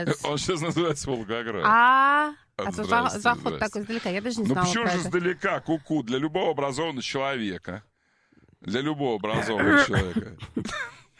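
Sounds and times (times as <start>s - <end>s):
speech: 0.0s - 7.9s, 8.6s - 11.1s
woman clearing her throat: 9.4s - 11.1s.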